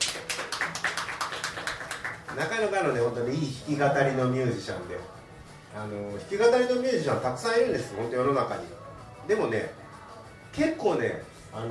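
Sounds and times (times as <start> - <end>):
audience applause welcoming a singer-songwriter: 0.0 - 2.4
speech: 2.4 - 9.8, 10.6 - 11.7.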